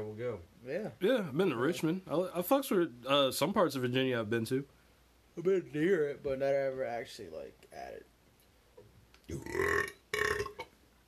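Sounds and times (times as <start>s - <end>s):
speech: 0.0s - 4.8s, 5.4s - 8.1s, 9.3s - 9.9s
deep gurgly burp: 9.3s - 10.7s.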